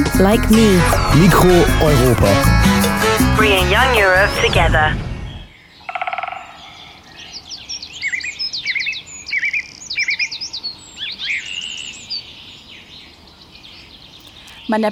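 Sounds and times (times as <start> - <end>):
speech: 0.2 - 5.1, 14.7 - 14.9
forest birds singing: 5.2 - 14.9.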